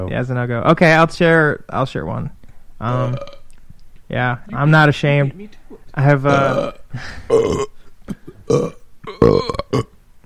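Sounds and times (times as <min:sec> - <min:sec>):
speech: 0:00.0 - 0:03.4, 0:04.1 - 0:09.9
loud drawn-out croaky burps: 0:02.8 - 0:03.5, 0:06.2 - 0:10.2.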